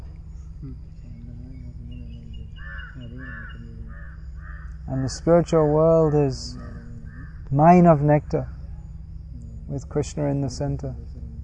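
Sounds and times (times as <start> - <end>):
steady low droning hum: 0.0 - 11.4
speech: 0.6 - 1.0, 4.9 - 6.6, 7.5 - 8.5, 9.7 - 11.1
crows cawing: 2.6 - 7.5.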